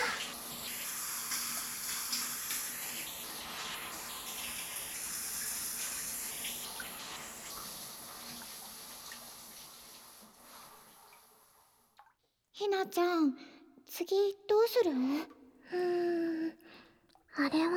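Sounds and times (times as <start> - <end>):
shower water running: 0.0 - 11.9
speech: 12.6 - 16.0, 17.4 - 17.7.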